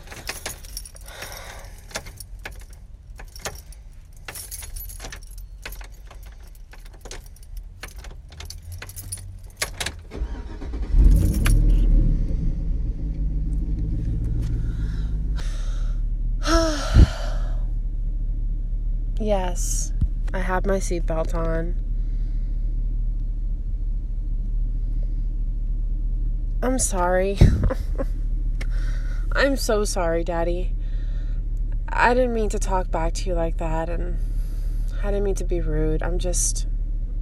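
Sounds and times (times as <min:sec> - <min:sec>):
keys jangling: 0:00.0 - 0:11.9
car engine cranking and starting: 0:00.0 - 0:37.2
speech: 0:19.3 - 0:19.8, 0:20.5 - 0:21.9, 0:26.6 - 0:28.1, 0:29.4 - 0:30.8, 0:32.0 - 0:34.3, 0:35.0 - 0:36.7.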